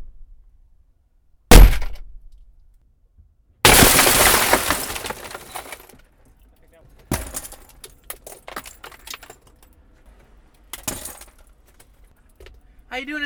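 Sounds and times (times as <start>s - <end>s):
car window glass smashing: 3.7s - 5.9s
speech: 13.0s - 13.2s.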